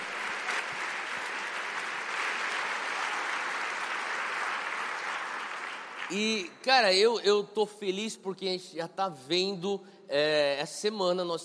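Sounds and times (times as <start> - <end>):
crowd applauding with many hands clapping: 0.0 - 6.6
speech: 6.1 - 11.4.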